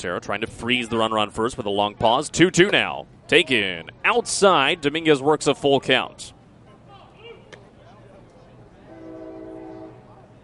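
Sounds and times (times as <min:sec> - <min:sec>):
speech: 0:00.0 - 0:06.4
distant freight train horn: 0:08.8 - 0:10.3.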